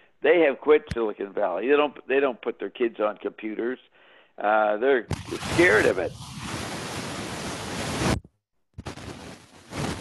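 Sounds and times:
speech: 0:00.2 - 0:06.4
harsh loud broadband static hissing and crackling: 0:05.1 - 0:08.2.

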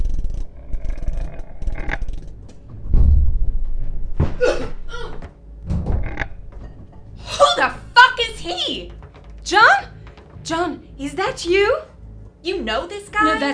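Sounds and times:
heavy metal airlock door cranked open: 0:01.4 - 0:10.4
speech: 0:11.0 - 0:13.5.

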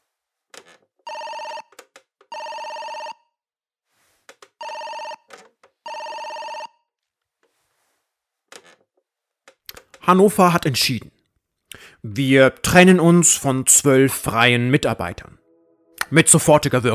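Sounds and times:
telephone ringing with electronic trilling tones: 0:01.0 - 0:03.4, 0:04.6 - 0:06.9
speech: 0:10.1 - 0:11.2, 0:12.0 - 0:15.4, 0:16.1 - 0:16.9.

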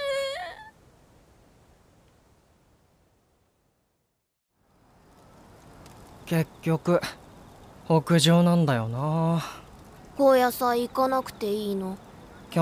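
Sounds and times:
person crying and whimpering: 0:00.0 - 0:00.7
soft steady hiss: 0:00.0 - 0:12.6
speech: 0:06.3 - 0:07.2, 0:07.9 - 0:09.6, 0:10.2 - 0:12.6.

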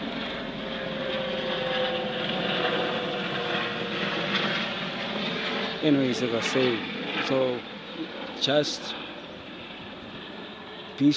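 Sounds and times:
helicopter flying overhead with engine and rotor roar: 0:00.0 - 0:11.1
speech: 0:05.8 - 0:09.0, 0:11.0 - 0:11.1.

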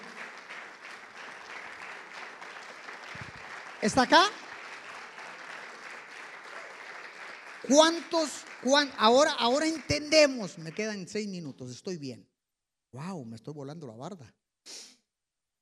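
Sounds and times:
crowd applauding: 0:00.0 - 0:11.6
speech: 0:03.8 - 0:04.4, 0:07.7 - 0:12.3, 0:12.9 - 0:14.9.

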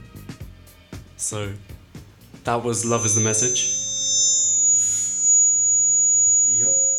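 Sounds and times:
speech: 0:01.2 - 0:01.7, 0:02.4 - 0:03.8
piercing feedback tone from room speakers left on: 0:02.8 - 0:06.9.

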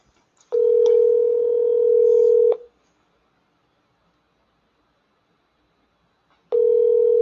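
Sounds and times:
telephone line tone as an incoming call connects: 0:00.5 - 0:02.7, 0:06.5 - 0:07.2.

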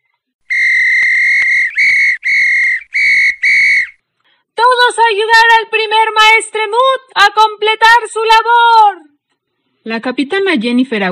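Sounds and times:
shrill whistle blasts: 0:00.5 - 0:04.0
speech: 0:05.1 - 0:09.1, 0:09.8 - 0:11.1.

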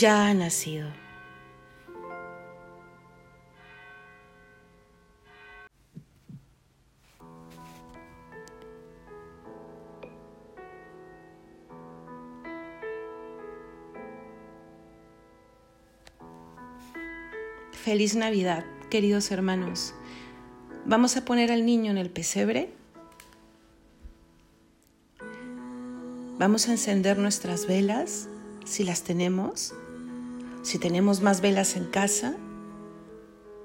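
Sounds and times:
speech: 0:00.0 - 0:01.0, 0:17.8 - 0:20.0, 0:20.8 - 0:22.8, 0:26.4 - 0:30.0, 0:30.6 - 0:32.5
church bells ringing: 0:00.1 - 0:05.7.

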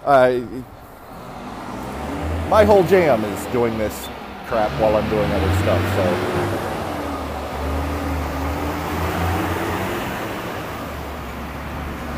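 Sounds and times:
speech: 0:00.0 - 0:00.8, 0:02.5 - 0:06.7
big trucks rumbling past on a street: 0:00.0 - 0:12.1.

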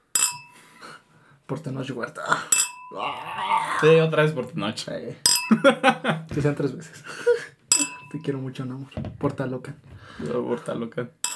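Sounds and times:
two wine glasses clinking in a toast: 0:00.1 - 0:00.6, 0:02.5 - 0:03.0, 0:05.3 - 0:05.8, 0:07.7 - 0:08.4
speech: 0:01.5 - 0:07.3, 0:08.1 - 0:11.2
laughter: 0:05.5 - 0:07.6.

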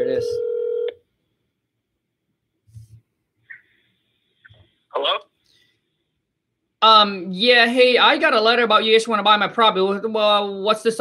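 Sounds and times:
electronic phone-line tones and beeps on an outgoing call: 0:00.1 - 0:01.0
speech: 0:06.8 - 0:10.9.

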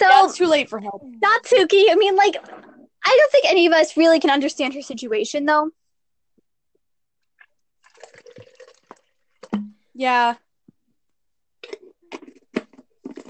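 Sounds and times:
speech: 0:00.0 - 0:05.8, 0:10.0 - 0:10.4
water poured from one cup into another: 0:01.5 - 0:03.0, 0:07.4 - 0:09.8
water dripping: 0:07.2 - 0:09.9.

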